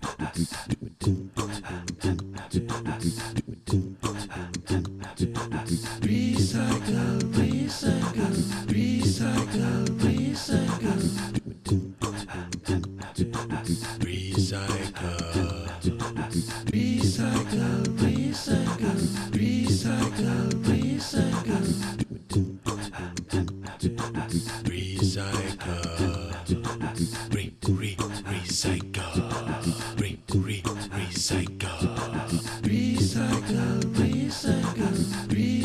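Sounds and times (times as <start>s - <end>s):
recycled voice: 0.2s - 35.6s.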